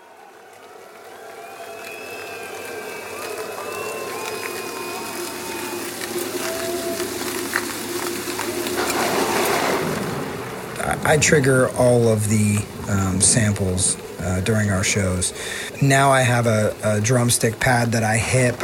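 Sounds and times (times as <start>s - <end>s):
steady rain: 0.0s - 18.6s
thin tonal whistles: 1.1s - 10.1s
low thunder rumble: 2.8s - 18.6s
speech: 11.1s - 18.6s.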